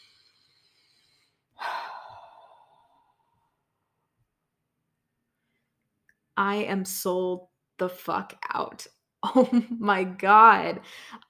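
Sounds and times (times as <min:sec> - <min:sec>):
deep breath: 0:00.0 - 0:03.6
speech: 0:06.4 - 0:11.2.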